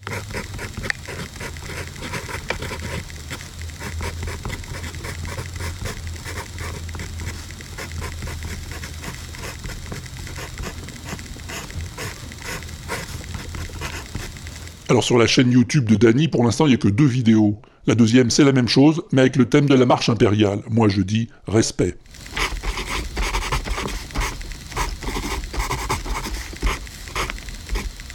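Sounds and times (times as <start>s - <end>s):
pencil scratching on paper: 0.0s - 14.6s, 22.2s - 28.0s
faint low hum: 0.0s - 28.1s
speech: 14.9s - 22.3s.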